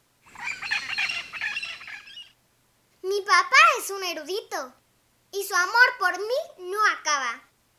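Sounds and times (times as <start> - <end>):
parrot squawking: 0.2 - 2.4
speech: 3.9 - 4.8, 5.4 - 7.5.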